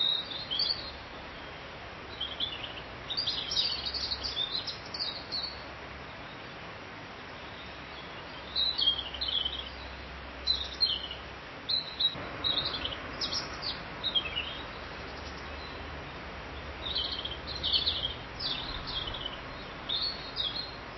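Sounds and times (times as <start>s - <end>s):
low background noise: 0.0s - 20.9s
bird chirping and twittering: 2.1s - 5.6s, 7.9s - 15.8s, 16.8s - 20.9s.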